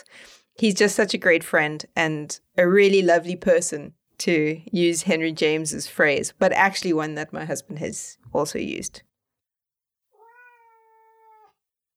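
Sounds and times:
speech: 0.0 - 9.1
cat meowing: 10.1 - 11.6.

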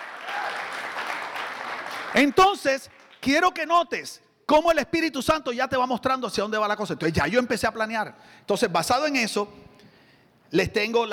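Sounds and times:
audience applauding: 0.0 - 3.2
speech: 2.2 - 9.6, 10.5 - 11.1.

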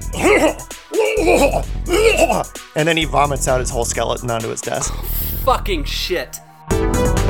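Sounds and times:
voice mimicking a coach's heavy strained coughing: 0.0 - 2.6, 4.8 - 5.2
speech: 1.3 - 7.2.

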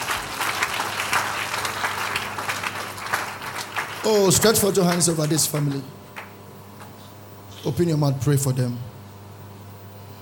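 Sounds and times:
congregation clapping hands during a church prayer and deliverance service: 0.0 - 6.9
speech: 4.0 - 6.0, 7.6 - 8.9.

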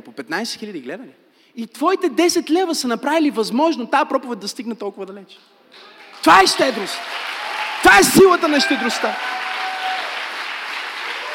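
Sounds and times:
speech: 0.1 - 9.4
audience applauding: 5.8 - 11.3.

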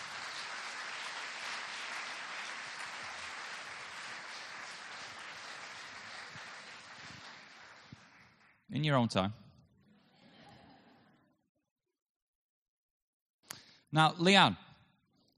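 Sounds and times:
large audience applauding: 0.0 - 8.6
speech: 8.7 - 9.4, 14.0 - 14.6.

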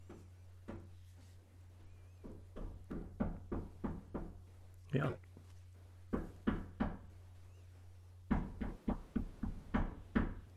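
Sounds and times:
faint low hum: 0.0 - 10.5
knocking on a room door in a house: 2.2 - 4.7, 6.0 - 7.2, 8.2 - 10.5
speech: 4.9 - 5.3.

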